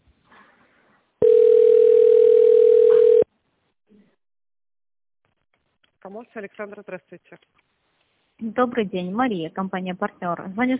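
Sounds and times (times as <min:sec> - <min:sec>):
telephone ringback tone on a phone line: 0:01.2 - 0:03.3
speech: 0:06.1 - 0:07.7, 0:08.4 - 0:10.7.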